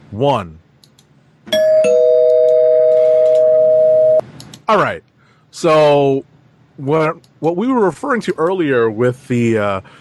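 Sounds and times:
speech: 0.1 - 0.6, 4.7 - 10.0
two-tone bell chime: 1.6 - 4.2.

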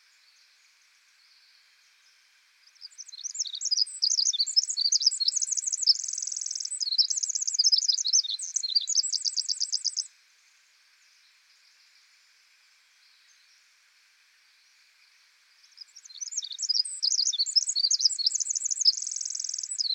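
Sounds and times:
Pacific wren song with very high rapid tinkling notes and trills: 2.9 - 10.1, 15.8 - 19.9.

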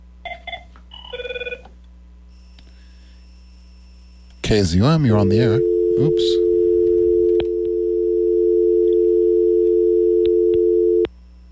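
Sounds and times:
low steady hum: 0.0 - 11.5
electronic telephone ringing with an incoming call: 0.3 - 1.6, 5.0 - 11.0
speech: 4.5 - 6.4.

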